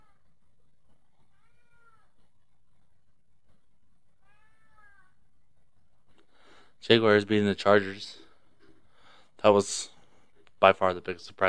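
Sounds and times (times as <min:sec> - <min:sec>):
cat meowing: 0:01.2 - 0:02.2, 0:04.1 - 0:05.2
speech: 0:06.8 - 0:08.2, 0:09.4 - 0:09.9, 0:10.6 - 0:11.4.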